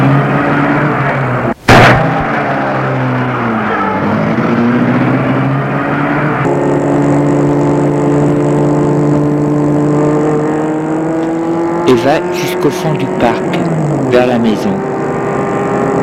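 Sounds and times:
car engine starting and driving across grounds: 0.0s - 16.0s
speech: 11.9s - 14.9s.

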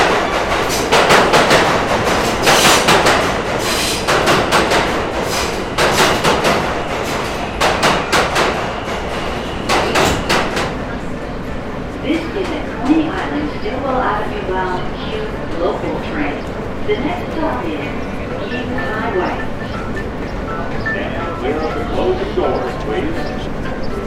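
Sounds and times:
clattering and banging: 0.0s - 10.8s
murmur of voices in a Coney Island shop: 10.6s - 24.0s.

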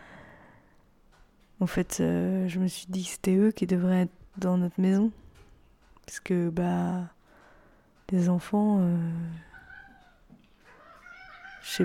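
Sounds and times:
speech: 1.6s - 5.2s, 6.1s - 7.2s, 8.1s - 9.5s, 11.6s - 11.8s
cats fighting and yowling: 9.4s - 11.8s.

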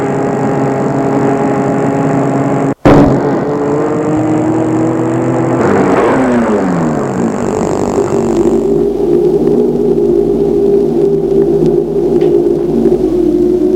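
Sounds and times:
car engine humming while driving through snow: 0.0s - 13.7s.

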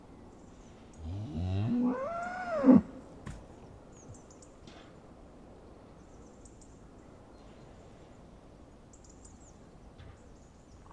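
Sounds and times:
cow mooing: 1.0s - 3.0s.

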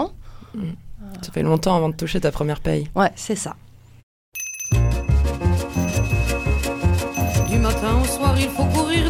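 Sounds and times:
speech: 0.0s - 3.6s
small servant's bell ringing: 4.4s - 9.0s.

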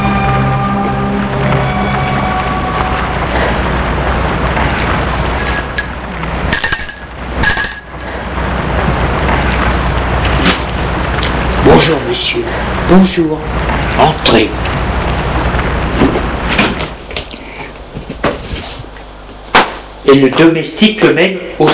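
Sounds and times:
steady rumbling noise: 0.0s - 21.7s
doorbell ringing at a parents' home: 5.4s - 8.8s
speech: 11.8s - 14.6s, 20.1s - 21.7s.

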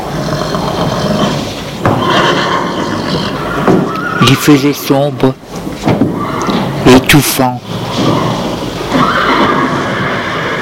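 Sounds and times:
horse neighing in a stable: 0.0s - 4.6s, 6.1s - 6.8s, 7.7s - 10.5s
speech: 4.3s - 5.4s, 6.8s - 8.2s.

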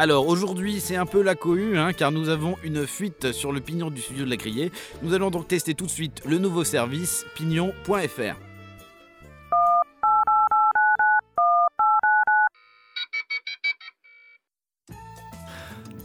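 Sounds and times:
speech: 0.0s - 8.5s
telephone keypad dialing beeps: 9.6s - 12.5s
high electronic chirps: 12.9s - 14.4s.

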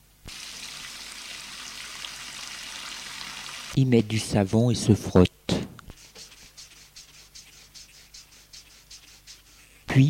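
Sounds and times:
tap water running into a sink basin as a washcloth is wetted: 0.3s - 3.8s
speech: 3.8s - 5.3s.

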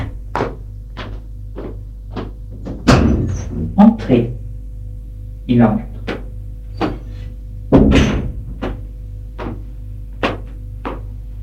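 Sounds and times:
steady low hum: 0.0s - 11.4s
leather-padded double door opening with thuds and clunk: 2.2s - 3.8s, 7.7s - 9.6s
speech: 4.1s - 4.4s, 5.5s - 5.9s.

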